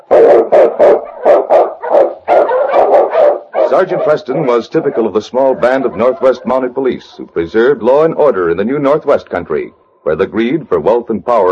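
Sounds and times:
husky sled dog barking: 0.0s - 7.2s
speech: 3.7s - 11.5s.

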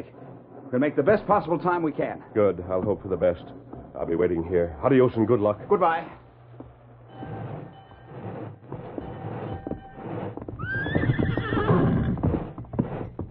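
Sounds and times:
hooves clopping: 0.0s - 13.2s
speech: 0.7s - 6.2s
horse whinnying: 10.5s - 12.6s.

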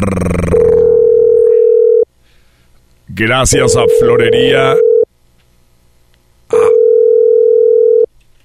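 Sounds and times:
speech: 0.0s - 0.6s, 3.1s - 4.9s
steady telephone line tone on a radio call-in line: 0.4s - 2.1s, 3.5s - 5.1s, 6.5s - 8.1s.

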